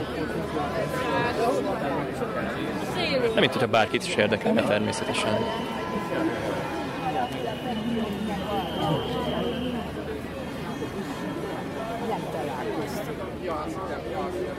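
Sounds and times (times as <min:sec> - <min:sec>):
large crowd of demonstrators chattering on a square: 0:00.0 - 0:14.5
speech: 0:03.1 - 0:06.5, 0:07.3 - 0:09.5, 0:12.3 - 0:14.5.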